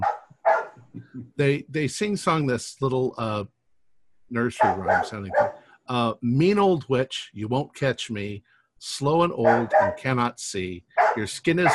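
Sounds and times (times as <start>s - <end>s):
dogs barking in the neighborhood: 0.0s - 0.8s, 4.6s - 5.7s, 9.4s - 10.1s, 10.9s - 11.7s
speech: 1.3s - 3.6s, 4.3s - 11.7s.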